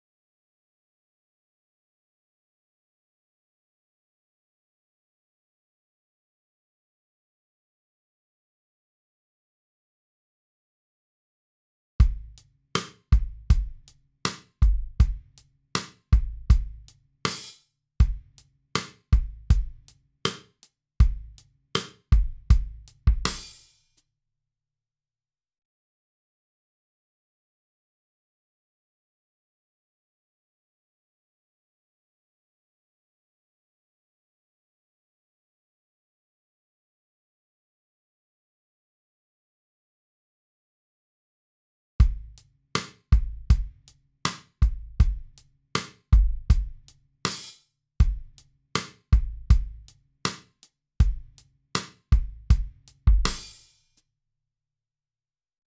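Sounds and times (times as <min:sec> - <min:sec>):
slow jam drum kit: 0:12.0 - 0:15.2, 0:15.8 - 0:17.5, 0:18.8 - 0:20.4, 0:21.8 - 0:23.6, 0:42.0 - 0:43.7, 0:44.3 - 0:50.4, 0:51.0 - 0:53.7.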